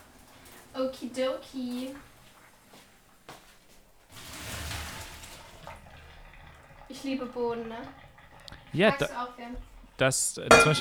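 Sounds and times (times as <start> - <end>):
water pouring into a sieve for draining and rinsing: 0.0 - 2.8, 4.0 - 10.8
speech: 0.9 - 2.1, 6.9 - 8.0, 8.7 - 10.8
brief clink: 10.5 - 10.8.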